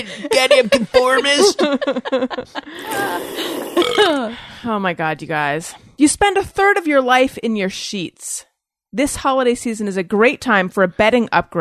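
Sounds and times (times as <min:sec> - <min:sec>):
laughter: 0:00.0 - 0:04.2
speech: 0:00.0 - 0:11.5
steady wash of breathy noise: 0:02.6 - 0:04.7
short rough throaty bursts like a person burping: 0:02.7 - 0:04.4.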